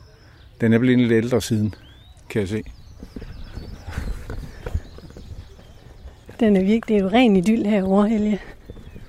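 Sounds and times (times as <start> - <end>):
speech: 0.6 - 3.2, 6.4 - 8.5
horse hooves clip-clopping in a car-free area near a harbour: 2.6 - 9.0
low rumble of horse-drawn cart wheels: 2.8 - 9.0.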